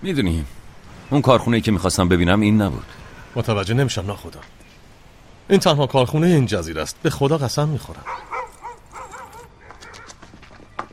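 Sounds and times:
speech: 0.0 - 4.6, 5.5 - 8.3
dog barking in high-pitched yelps: 8.0 - 10.2.

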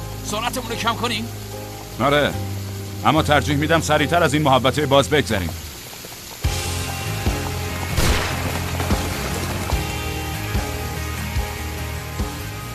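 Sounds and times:
heavy rain pouring during a storm: 0.0 - 12.7
speech: 0.3 - 5.6
sharp thuds and splashes: 7.2 - 10.7.

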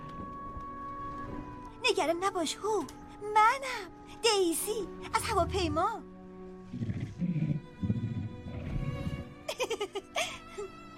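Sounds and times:
speech: 1.9 - 6.1
tiger roaring and growling: 6.7 - 9.3
laughter: 9.5 - 10.7.

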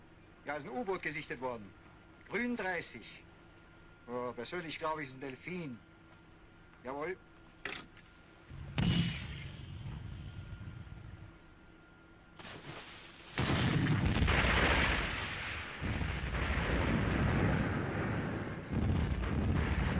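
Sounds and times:
speech: 0.5 - 3.3, 4.1 - 5.9, 6.8 - 7.3
explosion booms during a wartime naval alert: 8.5 - 10.7, 13.3 - 19.9
wind rumble: 8.5 - 11.4, 13.4 - 19.9.

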